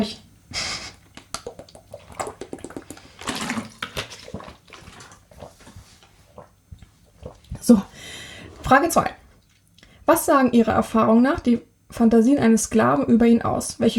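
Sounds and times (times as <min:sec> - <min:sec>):
gulps of water: 0:00.6 - 0:09.1
person sipping water: 0:00.8 - 0:10.0
speech: 0:07.7 - 0:07.9, 0:08.7 - 0:09.2, 0:10.1 - 0:13.9.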